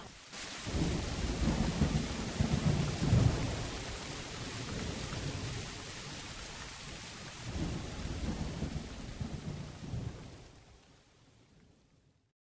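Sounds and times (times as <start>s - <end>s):
deep rumbling thunder in a thunderstorm: 0.0s - 6.3s, 7.4s - 10.5s
heavy rain in a thunderstorm: 0.0s - 12.3s.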